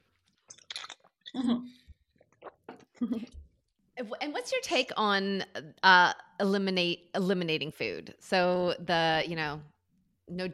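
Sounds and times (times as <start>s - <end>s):
people sipping and swallowing drinks: 0.2s - 3.4s
speech: 1.3s - 1.8s, 3.0s - 3.4s, 4.0s - 9.7s, 10.3s - 10.5s.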